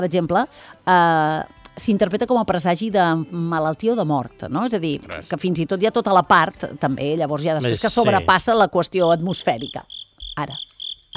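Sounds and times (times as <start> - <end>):
speech: 0.0 - 11.1
cricket chirping by rubbing its forewings together: 9.5 - 11.1.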